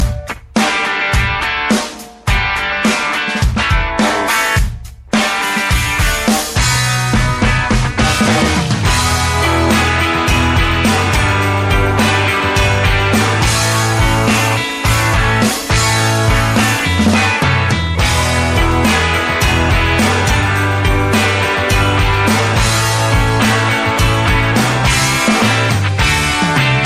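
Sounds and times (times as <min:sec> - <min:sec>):
rock music highlight: 0:00.0 - 0:26.8.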